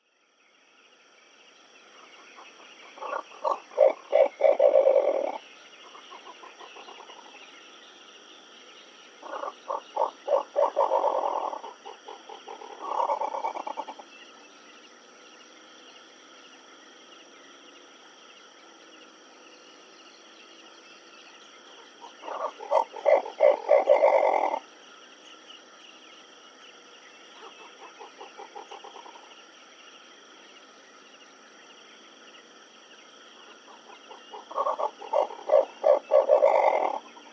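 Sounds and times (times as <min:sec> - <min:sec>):
Bubo coromandus dusky eagle-owl calling: 0:02.2 - 0:07.4, 0:09.2 - 0:14.0, 0:21.8 - 0:24.6, 0:33.4 - 0:37.3.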